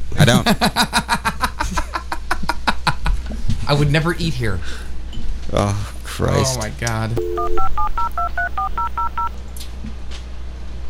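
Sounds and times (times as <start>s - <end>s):
low hum: 0.0s - 10.8s
speech: 0.2s - 1.0s, 3.7s - 4.9s, 5.5s - 9.3s
touch-tone telephone dialing beeps: 7.2s - 9.3s.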